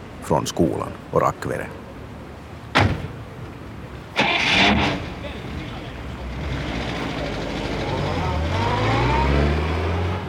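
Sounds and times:
speech: 0:00.3 - 0:01.8
car door thud: 0:02.7 - 0:03.2
car engine starting, idling and revving as the vehicle drives off: 0:04.2 - 0:05.3, 0:06.1 - 0:10.2.

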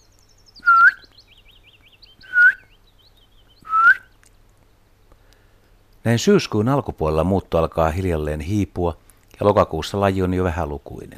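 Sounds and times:
migrating willow warbler contact calls: 0:00.0 - 0:05.5
speech: 0:06.0 - 0:11.1.

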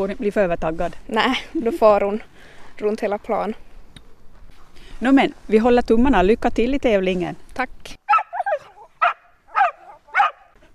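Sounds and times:
speech: 0:00.0 - 0:03.7, 0:05.0 - 0:08.0
hunting dog barking with high yips: 0:08.1 - 0:10.6.

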